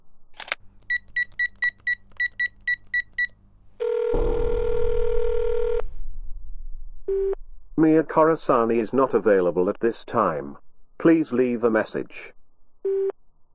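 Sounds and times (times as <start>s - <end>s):
click: 0.4s - 1.9s
keypad beeps of a phone number being dialed: 0.4s - 4.7s
low rumble: 0.4s - 11.2s
long steady phone ringing tone: 0.9s - 6.0s
speech: 7.8s - 12.3s.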